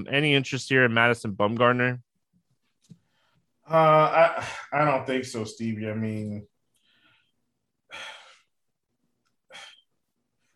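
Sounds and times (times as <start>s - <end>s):
speech: 0.0s - 2.1s, 3.7s - 6.5s
person breathing heavily with forceful breathy exhales: 6.8s - 8.6s, 9.4s - 10.5s.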